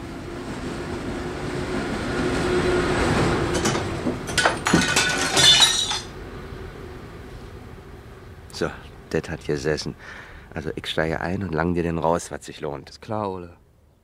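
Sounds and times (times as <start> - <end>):
loud continuous rumble of a passing train: 0.0 - 12.3
glass pane of a courtyard door being smashed in: 4.3 - 6.1
speech: 8.6 - 13.6.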